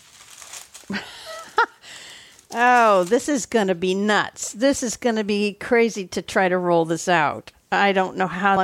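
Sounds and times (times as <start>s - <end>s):
parchment paper rustling and crinkling: 0.0s - 3.6s
speech: 0.9s - 1.2s, 2.5s - 8.6s.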